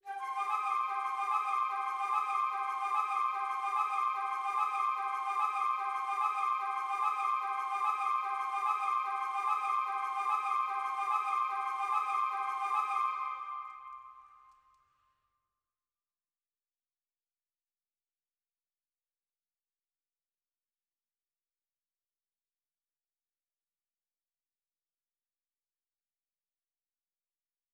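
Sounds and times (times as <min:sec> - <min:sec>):
woodwind melodies in C minor at 147 BPM: 0:00.0 - 0:14.9.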